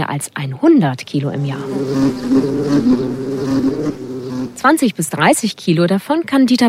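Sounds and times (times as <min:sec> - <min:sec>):
speech: 0:00.0 - 0:06.6
honey bee colony buzzing: 0:01.3 - 0:04.9.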